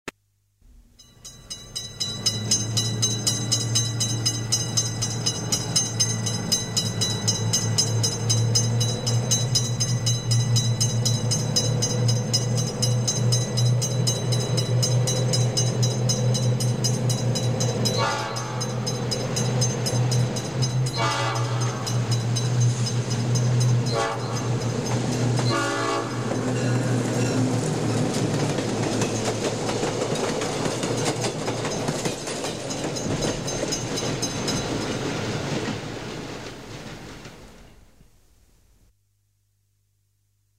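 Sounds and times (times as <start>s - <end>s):
train approach warning signal: 0.8s - 35.2s.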